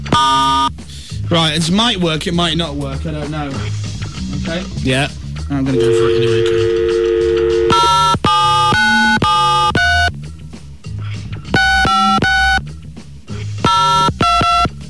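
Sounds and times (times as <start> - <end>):
speech: 0.2 - 6.8
telephone being dialled with electronic keypad beeps: 5.8 - 10.1, 11.6 - 12.6, 13.7 - 14.7.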